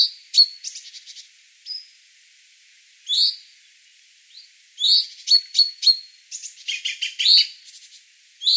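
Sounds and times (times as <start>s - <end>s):
common chaffinch calls: 0.0s - 2.0s, 4.3s - 8.5s.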